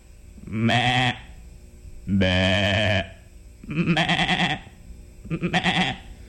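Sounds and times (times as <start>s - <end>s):
sheep bleating: 0.5s - 1.3s, 2.1s - 4.7s, 5.3s - 6.1s.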